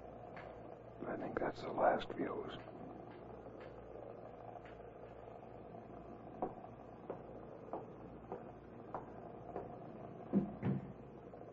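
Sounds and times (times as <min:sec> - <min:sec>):
low hum: 0:00.0 - 0:11.5
speech: 0:01.0 - 0:02.8
storeroom door knocks: 0:10.3 - 0:11.0.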